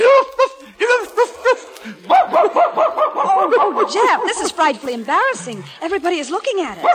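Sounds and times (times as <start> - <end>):
laughter: 0.0 - 6.9
dog barking in sharp yappy barks: 2.1 - 5.4, 6.8 - 6.9
speech: 3.9 - 6.9.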